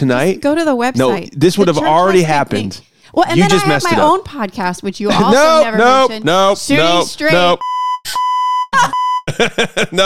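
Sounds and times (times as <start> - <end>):
speech: 0.0 - 8.2, 9.4 - 10.0
laughter: 5.1 - 6.3, 9.3 - 10.0
high-pitched censor bleep from a beep button: 7.4 - 9.3.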